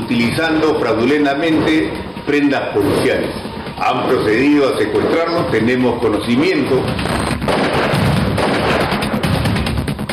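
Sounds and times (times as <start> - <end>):
speech: 0.1 - 7.6
gunshots fired inside a pickup truck: 7.3 - 9.6.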